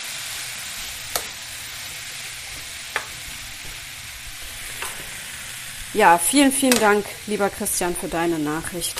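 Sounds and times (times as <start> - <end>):
leek and pears sizzling while frying in a pan: 0.0 - 8.9
speech: 5.9 - 8.9.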